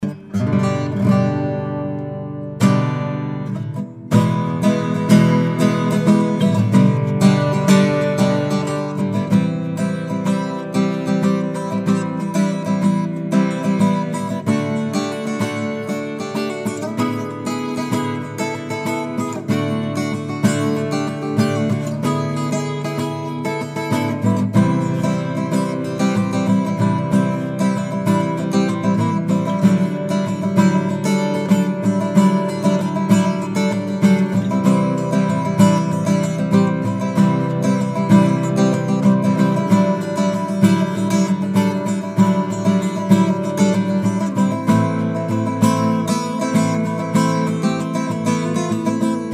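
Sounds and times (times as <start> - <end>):
acoustic jam: 0.0 - 49.3.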